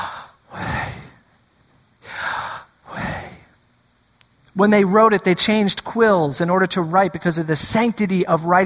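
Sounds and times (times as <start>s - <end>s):
person breathing in and out imitating a divine name: 0.0s - 1.2s, 2.0s - 3.5s
speech: 4.6s - 8.6s.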